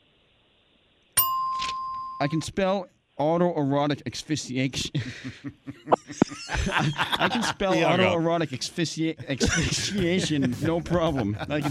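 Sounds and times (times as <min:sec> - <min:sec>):
bell ding: 0:01.2 - 0:02.5
speech: 0:02.2 - 0:11.6
laughter: 0:04.8 - 0:08.6, 0:09.2 - 0:11.6.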